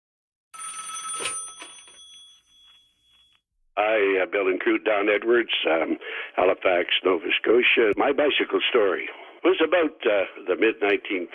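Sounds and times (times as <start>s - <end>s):
telephone bell on a radio request line ringing: 0.5s - 3.4s
speech: 3.8s - 11.3s.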